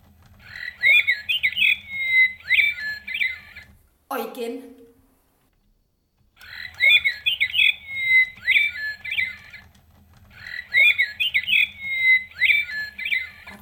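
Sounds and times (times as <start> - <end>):
mechanical toy nightingale trilling and warbling: 0.2 - 3.8, 6.4 - 13.6
speech: 4.2 - 4.8.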